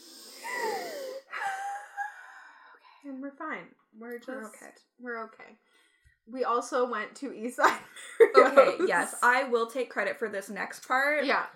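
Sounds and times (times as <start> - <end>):
wheezy whistling deep breath in and out: 0.0 - 2.9
speech: 3.0 - 11.5.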